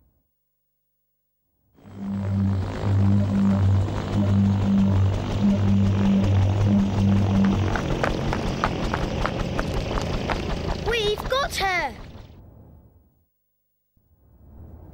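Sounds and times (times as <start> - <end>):
helicopter flying with rotor chop and engine roar: 1.8 - 12.5.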